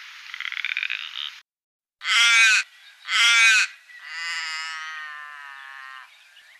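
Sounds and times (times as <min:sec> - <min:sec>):
little raven harsh calls in Canberra: 0:02.0 - 0:06.1.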